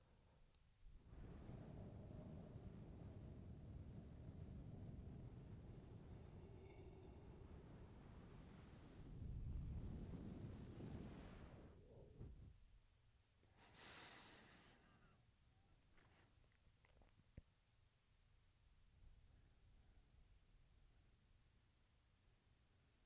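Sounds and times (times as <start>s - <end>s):
faint watery surf-like wash: 1.0s - 11.9s
steady wind roaring and buffeting: 1.0s - 12.5s.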